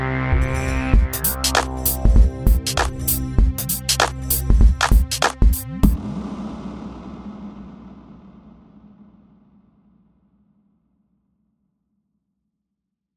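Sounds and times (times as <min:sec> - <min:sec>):
atmosphere: 0:00.1 - 0:08.4
musical stingers: 0:00.3 - 0:06.0.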